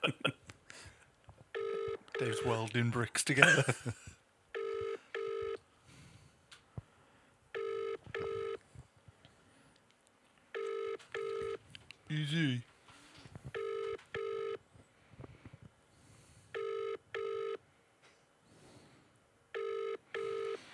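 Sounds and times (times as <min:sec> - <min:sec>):
faint noise: 0:00.0 - 0:20.7
telephone ringback tone on an outgoing call from an improvised house phone: 0:01.6 - 0:02.6, 0:04.6 - 0:05.6, 0:07.6 - 0:08.6, 0:10.6 - 0:11.6, 0:13.6 - 0:14.6, 0:16.6 - 0:17.6, 0:19.5 - 0:20.7
speech: 0:02.2 - 0:04.1.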